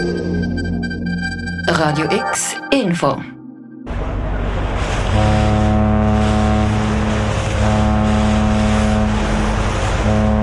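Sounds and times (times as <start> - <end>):
large cargo ship engine droning on a river: 0.0 - 10.4
speech: 1.7 - 3.4
broadband rushing river water: 3.9 - 10.4.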